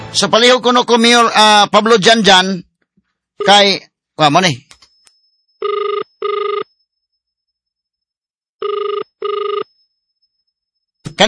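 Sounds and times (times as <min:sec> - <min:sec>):
speech: 0:00.1 - 0:02.7, 0:03.4 - 0:04.6
cellphone ringing with electronic trill: 0:03.4 - 0:03.8, 0:05.0 - 0:06.8, 0:08.6 - 0:10.0.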